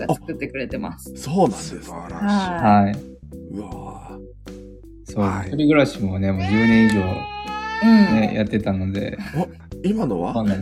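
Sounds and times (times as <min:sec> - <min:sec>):
speech: 0:00.0 - 0:04.4, 0:05.1 - 0:10.5
cat meowing: 0:06.4 - 0:08.4.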